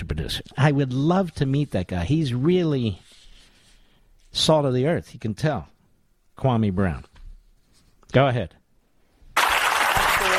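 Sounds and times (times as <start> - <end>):
speech: 0.2 - 3.1, 4.4 - 5.7, 6.4 - 7.1, 8.1 - 8.6
audience applause: 9.4 - 10.3.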